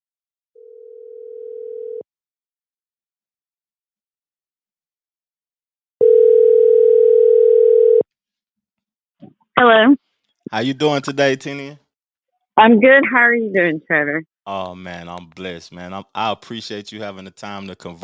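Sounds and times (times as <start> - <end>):
electronic ringing tone of an outgoing phone call: 0.6 - 2.1, 6.0 - 8.0
speech: 9.6 - 11.8, 12.6 - 18.0.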